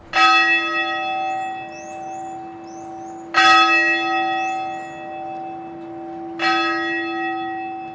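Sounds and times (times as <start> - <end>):
deep church bell tolling: 0.0 - 7.9
faint birdsong: 1.0 - 6.2.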